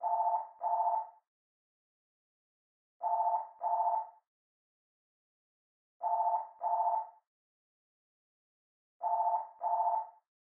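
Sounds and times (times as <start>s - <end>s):
telephone ringtone: 0.0s - 1.2s, 3.0s - 4.2s, 6.0s - 7.2s, 9.0s - 10.2s.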